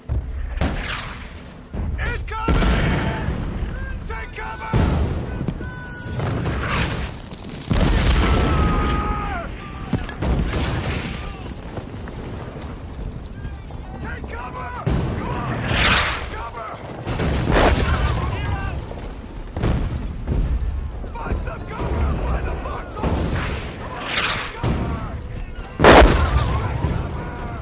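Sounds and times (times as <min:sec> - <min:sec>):
heavy German artillery explosions: 0:00.0 - 0:27.5.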